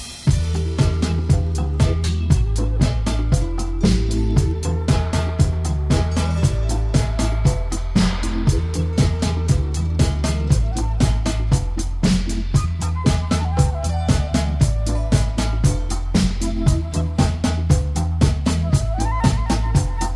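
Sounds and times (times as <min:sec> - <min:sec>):
harp dub music: 0:00.1 - 0:20.1.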